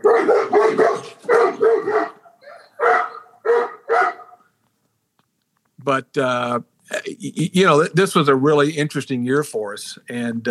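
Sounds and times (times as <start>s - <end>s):
dog barking: 0.0s - 4.5s
speech: 5.9s - 10.4s.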